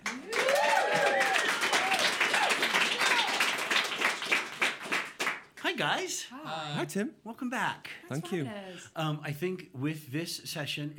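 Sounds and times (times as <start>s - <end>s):
live audience applauding in a radio station listener lounge in Idaho: 0.0s - 5.7s
audience whoops and cheers: 0.2s - 3.5s
speech: 5.8s - 10.9s.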